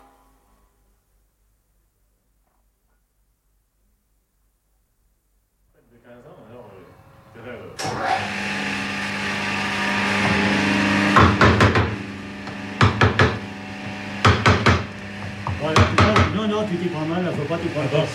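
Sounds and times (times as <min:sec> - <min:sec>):
steady hum: 0:00.0 - 0:18.1
hammer striking a hand tool: 0:11.2 - 0:16.4.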